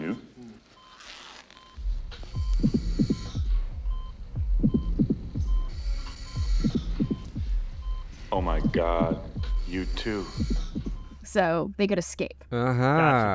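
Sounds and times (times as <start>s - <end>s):
steady electronic hum: 1.7s - 13.1s
two heartbeats through a stethoscope: 1.8s - 11.4s
speech: 8.4s - 10.6s, 11.3s - 13.3s.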